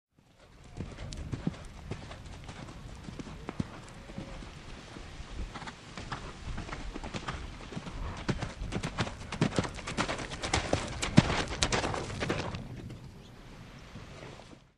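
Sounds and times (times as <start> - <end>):
horse gaits approaching: 0.2 - 14.7.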